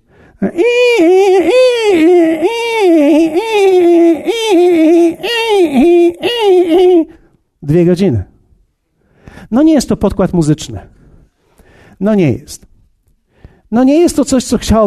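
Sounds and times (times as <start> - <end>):
speech: 0.4 - 1.6, 7.7 - 8.3, 9.5 - 10.9, 12.0 - 12.7, 13.7 - 14.8
voice mimicking a beginner scratching at a violin: 0.4 - 7.2.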